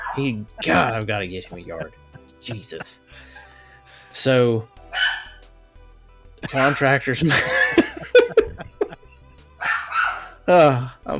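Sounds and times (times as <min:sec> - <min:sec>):
speech: 0:00.2 - 0:03.4, 0:04.2 - 0:04.8, 0:06.5 - 0:07.6, 0:10.5 - 0:11.1
laughter: 0:00.6 - 0:03.6, 0:06.4 - 0:09.2
male puppy barking and bark-whining: 0:04.9 - 0:05.4, 0:06.5 - 0:06.8, 0:09.6 - 0:10.4.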